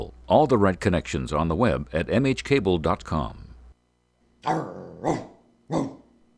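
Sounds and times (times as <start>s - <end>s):
speech: 0.3s - 3.4s, 4.4s - 6.0s
dog barking: 4.4s - 6.1s.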